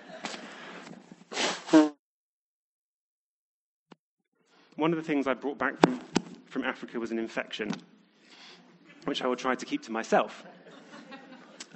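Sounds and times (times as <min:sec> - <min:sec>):
laughter: 0:00.0 - 0:00.5, 0:10.2 - 0:11.7
loud nose blowing: 0:01.3 - 0:02.0
speech: 0:04.8 - 0:08.0, 0:09.0 - 0:10.6.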